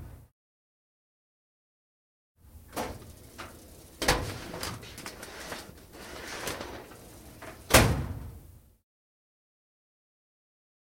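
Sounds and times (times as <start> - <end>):
filing cabinet: 2.6 - 8.1.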